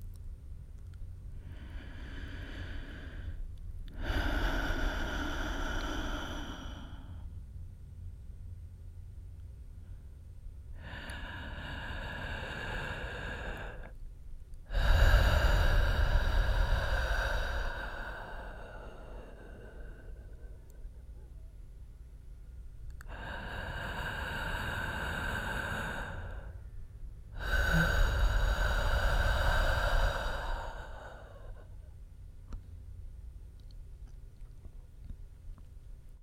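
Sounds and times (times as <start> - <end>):
slow deep belly breathing for relaxation: 1.3 - 7.5, 9.8 - 22.2, 22.9 - 32.6.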